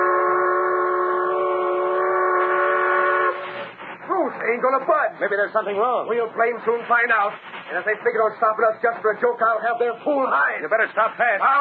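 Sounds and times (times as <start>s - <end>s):
steam train whistle blowing a long steady chord: 0.0s - 3.8s
speech: 4.5s - 11.5s.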